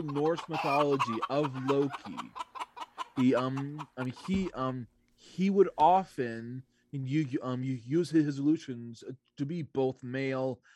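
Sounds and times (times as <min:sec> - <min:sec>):
speech: 0:00.0 - 0:02.5, 0:03.2 - 0:10.7
voice imitating a clucking chicken: 0:00.0 - 0:04.6.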